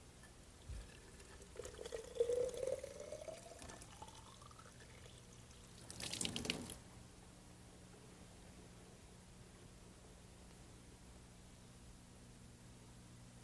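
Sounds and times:
water filling a squirt bottle: 0.7 - 6.8.

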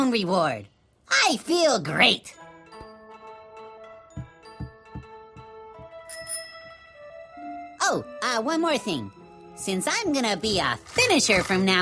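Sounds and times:
speech: 0.0 - 2.4, 7.9 - 11.7
soft rhythmic thumps: 2.7 - 3.1, 4.1 - 6.4
bicycle bell ringing: 6.1 - 6.9.

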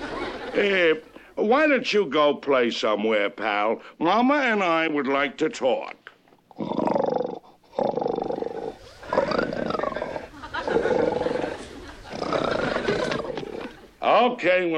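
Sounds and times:
laughter: 0.0 - 1.4, 9.0 - 13.9
speech: 0.6 - 6.9, 14.1 - 14.7
lion-like animal roaring: 6.5 - 13.8.

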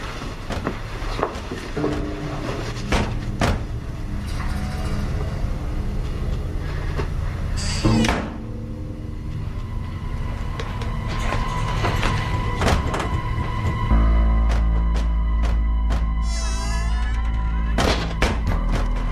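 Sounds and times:
steady low rumble: 0.0 - 19.1
doors slamming shut: 1.8 - 5.0, 7.6 - 8.5, 11.2 - 19.1.

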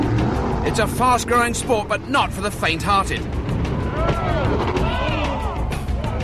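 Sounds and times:
rushing water: 0.0 - 4.8
whitewater powerboat engine roaring up rapids: 0.0 - 6.2
speech: 0.7 - 3.4.

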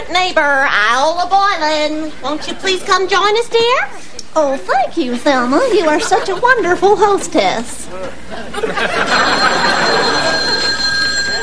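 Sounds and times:
speech: 0.1 - 10.2
laughter: 5.6 - 7.4, 8.0 - 11.4
telephone ringing with a bright sustained electronic tone: 8.8 - 11.4.

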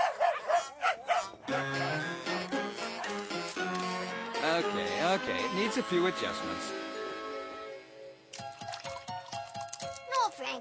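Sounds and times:
two dogs barking sharply: 0.0 - 1.8, 2.8 - 3.4
music: 1.4 - 10.6
speech: 4.8 - 6.8.

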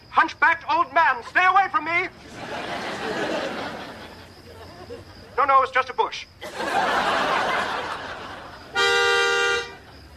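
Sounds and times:
speech: 0.2 - 3.7, 5.4 - 7.3
laughter: 1.1 - 5.4, 6.4 - 8.8
car horn honking: 8.7 - 9.9.

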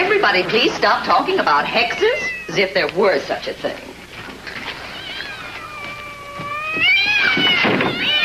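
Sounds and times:
speech: 0.3 - 3.9
cats yowling and screeching: 2.0 - 2.7, 4.5 - 8.2.

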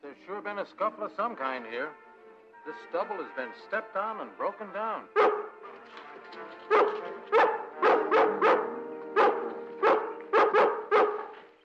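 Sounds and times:
speech: 0.3 - 5.3
dog barking loudly: 5.2 - 5.6, 6.7 - 11.4.

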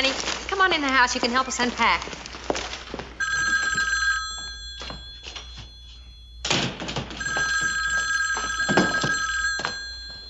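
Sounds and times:
speech: 0.1 - 2.7
telephone ringing with trilling bell: 3.2 - 10.2.

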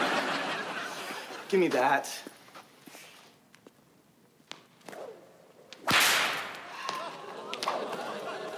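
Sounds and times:
laughter: 0.0 - 1.6, 6.7 - 8.5
speech: 1.5 - 2.4
whip cracking: 4.8 - 8.0.

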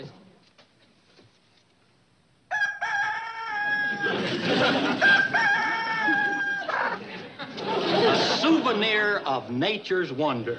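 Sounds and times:
rooster crowing: 2.5 - 7.1
laughter: 3.8 - 10.5
speech: 8.8 - 10.5.

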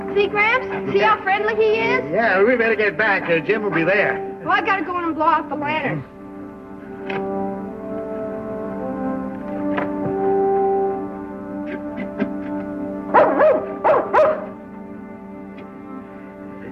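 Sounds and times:
steady humming tonal background: 0.0 - 16.7
speech: 0.2 - 6.2, 7.1 - 7.3
dog barking: 13.1 - 14.6.

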